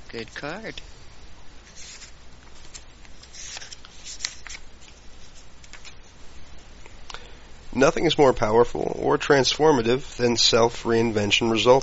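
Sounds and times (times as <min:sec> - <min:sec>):
speech: 0:00.1 - 0:01.0, 0:07.8 - 0:11.8
playing cards being handled and drawn from a card deck: 0:01.7 - 0:06.0.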